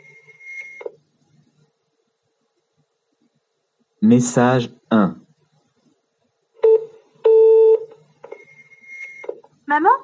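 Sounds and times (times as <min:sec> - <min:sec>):
short high electronic answering machine beep: 0:00.0 - 0:01.0, 0:06.6 - 0:09.4
faint low noise: 0:00.0 - 0:10.0
speech: 0:04.0 - 0:05.2.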